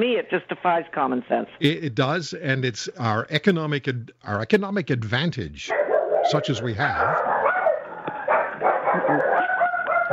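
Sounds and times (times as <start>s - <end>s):
speech: 0.0s - 7.4s
several dogs barking and yipping: 5.7s - 10.1s.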